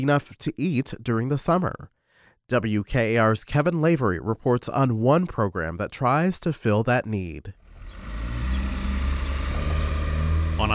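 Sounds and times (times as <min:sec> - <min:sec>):
speech: 0:00.0 - 0:07.6
bus engine droning down a street on a hot summer day: 0:07.7 - 0:10.7.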